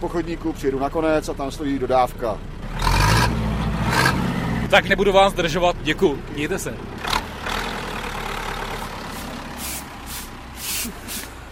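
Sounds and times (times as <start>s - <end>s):
speech: 0.0s - 3.4s, 4.7s - 7.0s
snow-clearing tractor engine rumbling: 0.0s - 11.5s
short bursts of high hiss: 9.1s - 11.5s.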